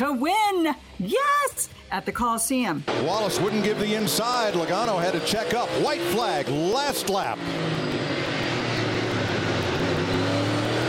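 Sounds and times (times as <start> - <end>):
speech: 0.0 - 8.0
stock car engines roaring on a quarter-mile track inside a stadium: 2.9 - 10.8.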